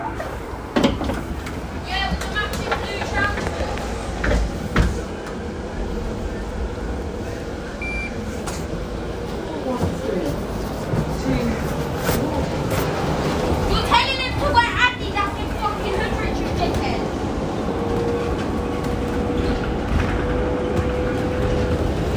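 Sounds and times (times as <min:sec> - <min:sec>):
moving city bus engine rumble: 0:00.0 - 0:22.1
passengers chattering on a city bus: 0:00.0 - 0:22.1
road noise inside a moving city bus: 0:00.0 - 0:22.1
brief beeps inside a moving city bus: 0:07.8 - 0:08.2.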